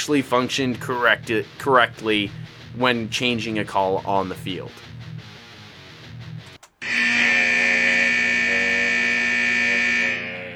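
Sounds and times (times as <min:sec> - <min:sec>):
speech: 0:00.0 - 0:04.9
loud harsh electronic buzzer ending a segment: 0:06.6 - 0:10.5.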